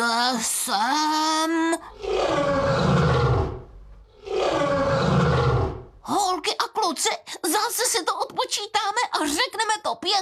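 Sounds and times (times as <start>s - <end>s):
speech: 0.3s - 2.6s, 6.9s - 10.2s
lion roaring: 1.9s - 6.0s.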